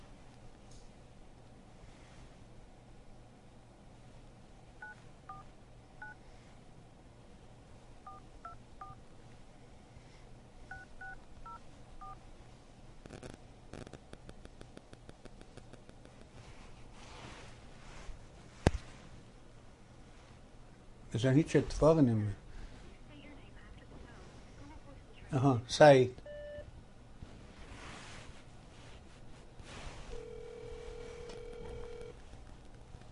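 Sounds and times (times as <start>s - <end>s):
low steady hiss: 0.0s - 33.1s
telephone keypad dialing tones as someone places a call: 10.7s - 12.2s, 30.2s - 32.1s
speech: 21.2s - 22.4s, 25.3s - 26.2s.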